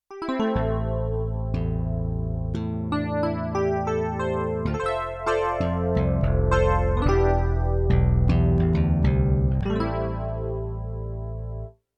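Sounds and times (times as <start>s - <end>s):
wire bass and electric piano split on a sampler: 0.2s - 11.8s.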